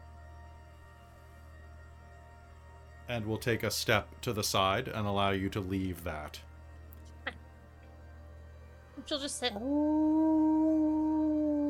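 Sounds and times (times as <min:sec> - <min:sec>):
speech: 0:03.1 - 0:06.5, 0:09.0 - 0:10.4
person's voice imitating a small fox's tiny howl: 0:10.4 - 0:11.6.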